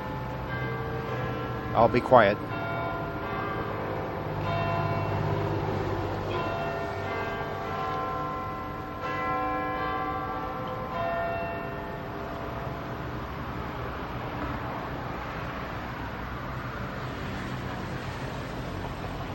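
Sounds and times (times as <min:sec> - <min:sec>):
large clock-tower bell chiming: 0:00.0 - 0:14.1
steady outdoor noise: 0:00.0 - 0:19.3
speech: 0:01.8 - 0:02.5.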